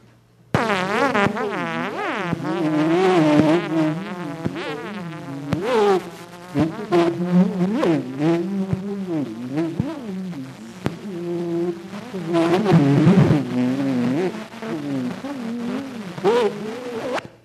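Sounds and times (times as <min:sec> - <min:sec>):
tuning fork tone buzzing: 0:00.6 - 0:17.3
warbling voice-like layer: 0:02.4 - 0:17.2.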